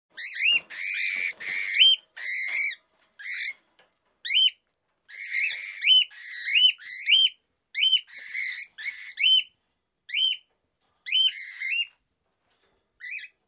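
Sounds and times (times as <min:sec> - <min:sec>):
hatchlings chirping: 0:00.2 - 0:03.6, 0:04.2 - 0:10.5.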